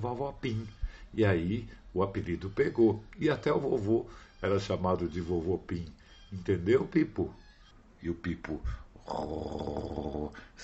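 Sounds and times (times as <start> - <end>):
speech: 0.0 - 7.4, 8.0 - 10.6
sleeping puppy snoring: 9.0 - 10.4.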